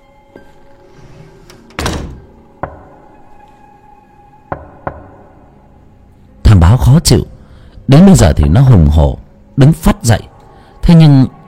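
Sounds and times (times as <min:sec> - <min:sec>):
speech: 0:00.4 - 0:00.6, 0:06.8 - 0:07.3, 0:07.9 - 0:10.3, 0:10.9 - 0:11.4
dull knocking on a door: 0:02.6 - 0:03.0, 0:04.5 - 0:05.2.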